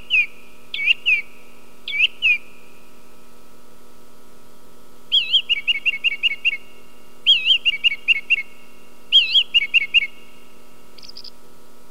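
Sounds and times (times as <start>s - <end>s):
song thrush singing wavering whistled phrases: 0.0s - 1.3s, 1.9s - 2.5s, 5.1s - 6.6s, 7.3s - 8.5s, 9.1s - 10.2s
soft steady hum: 0.0s - 11.8s.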